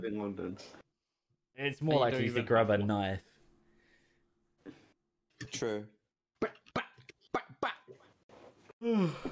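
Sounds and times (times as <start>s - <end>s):
speech: 0.0s - 0.9s, 1.6s - 3.3s, 5.4s - 6.6s, 8.8s - 9.2s
person imitating dog barking and howling: 6.4s - 8.0s.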